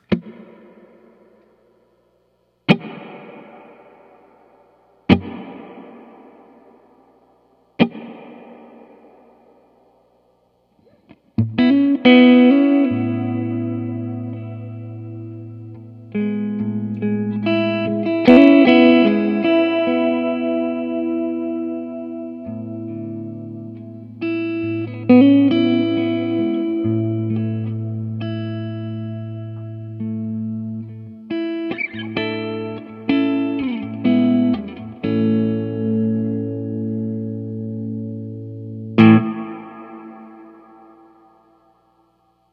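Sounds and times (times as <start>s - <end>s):
guitar chords through a modulated reverb effect: 0.0s - 2.0s, 2.6s - 10.2s, 10.8s - 42.5s.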